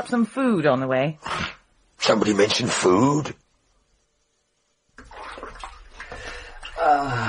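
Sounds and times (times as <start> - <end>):
speech: 0.0 - 1.4, 2.1 - 3.4, 6.8 - 7.2
bathwater sloshing and splashing in a tub: 4.9 - 7.2.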